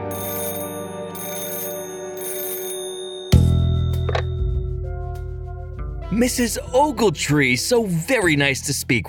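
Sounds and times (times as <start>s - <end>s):
old-style telephone bell ringing: 0.1s - 4.5s
speech: 6.2s - 9.0s.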